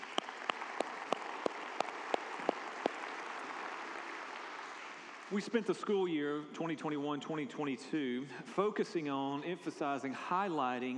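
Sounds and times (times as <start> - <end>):
single person clapping: 0.0 - 5.3
audience applause: 0.0 - 5.5
speech: 5.3 - 10.9.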